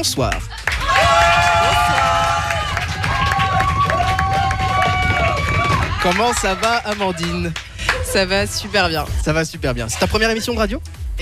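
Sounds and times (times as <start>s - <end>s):
speech: 0.0s - 1.2s, 6.0s - 11.2s
radio show audience applauding an ovation: 0.0s - 8.2s
radio show audience cheering an ovation: 0.6s - 7.6s
audience members whooping with high voices: 0.7s - 7.4s.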